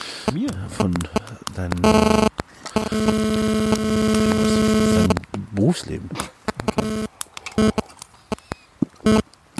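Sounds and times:
rustling and clicking of a tobacco pipe being unpacked outdoors: 0.0 - 4.4, 5.1 - 9.5
crinkly bursts: 0.0 - 9.5
speech: 0.3 - 2.2, 5.8 - 6.2
small taps and scrapes: 0.4 - 2.8, 5.1 - 9.5.

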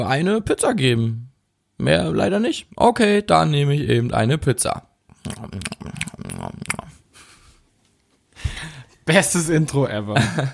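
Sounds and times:
speech: 0.0 - 5.8, 9.1 - 10.5
vocal noises: 5.1 - 7.0
wet smacking and chewing: 5.1 - 7.0
laughter: 10.2 - 10.5.

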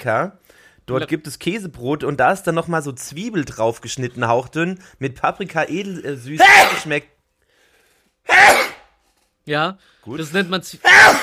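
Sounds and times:
speech: 0.0 - 7.2, 8.2 - 8.7, 9.5 - 11.2
loud sneeze: 6.4 - 7.0, 8.3 - 9.0, 10.8 - 11.2.

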